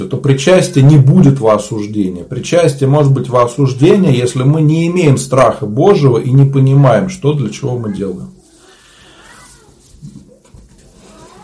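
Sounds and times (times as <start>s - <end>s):
speech: 0.0s - 8.4s
cat meowing agitatedly: 7.9s - 9.9s, 11.0s - 11.4s.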